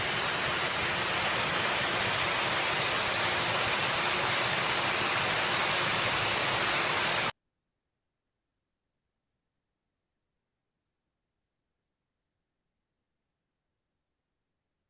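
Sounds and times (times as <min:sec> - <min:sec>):
dense rush of flowing water: 0:00.0 - 0:07.3.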